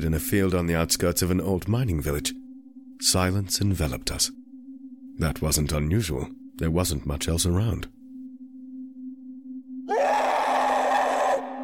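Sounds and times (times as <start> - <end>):
speech: 0.0 - 2.4, 3.0 - 4.4, 5.2 - 8.0
low steady hum: 0.0 - 9.8
harsh scream at night in a field on the outskirts of an old mining village: 9.9 - 11.6.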